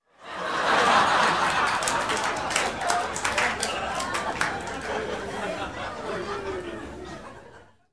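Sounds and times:
crowd laughing: 0:00.1 - 0:07.9
crowd clapping: 0:00.5 - 0:05.8.

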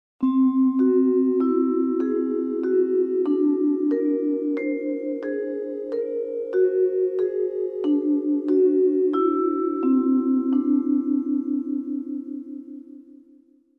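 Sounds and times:
mysterious vibraphone melody: 0:00.2 - 0:13.4.

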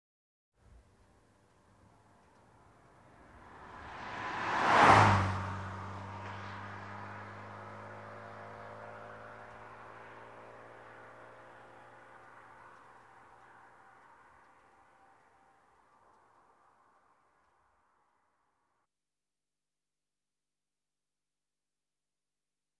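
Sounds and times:
car driving by fast: 0:02.0 - 0:15.7.

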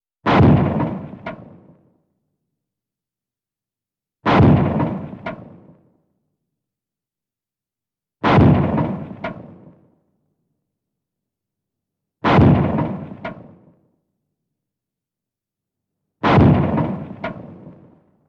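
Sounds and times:
cannon shot: 0:00.3 - 0:01.9, 0:04.2 - 0:06.0, 0:08.2 - 0:09.9, 0:12.2 - 0:13.8, 0:16.2 - 0:18.1.

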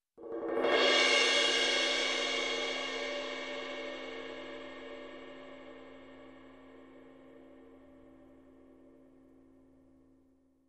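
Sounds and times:
short cymbal swell: 0:00.7 - 0:05.8.

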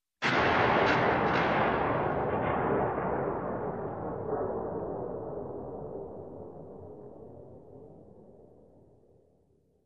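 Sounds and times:
distant building blowing up: 0:00.2 - 0:06.4.

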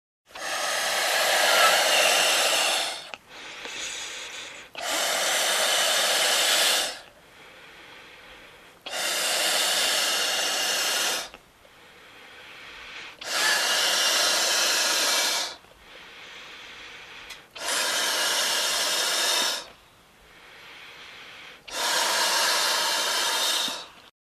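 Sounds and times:
balloon being inflated: 0:00.3 - 0:07.0, 0:08.8 - 0:11.4, 0:13.0 - 0:15.6, 0:17.3 - 0:19.7, 0:21.6 - 0:24.0.

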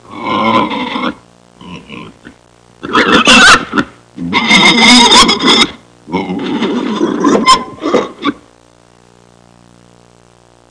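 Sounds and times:
stuck pig squealing: 0:00.1 - 0:08.4.

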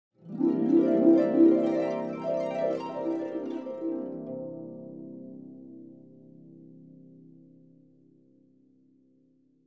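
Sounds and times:
dreamy harp sound effect: 0:00.2 - 0:06.8.

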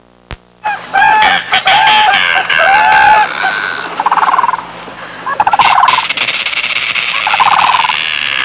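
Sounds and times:
bird sounds in the Everglades: 0:00.6 - 0:08.4.

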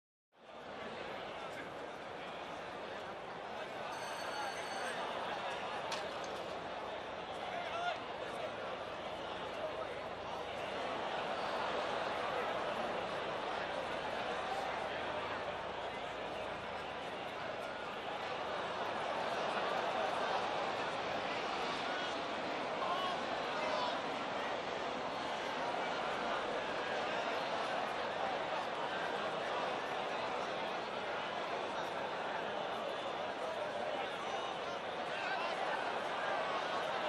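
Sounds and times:
distant crowd: 0:00.4 - 0:37.0.

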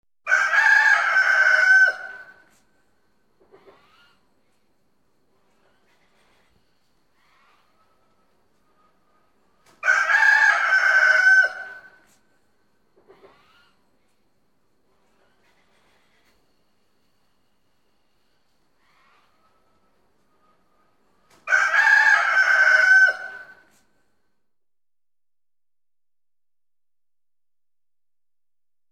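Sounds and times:
roosters crowing: 0:00.3 - 0:02.5, 0:09.8 - 0:12.0, 0:21.4 - 0:23.7.

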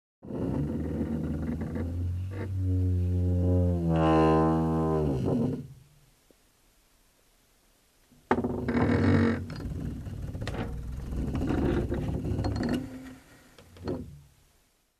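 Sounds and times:
dull old wooden floor creaking: 0:00.2 - 0:05.6, 0:08.3 - 0:14.2.

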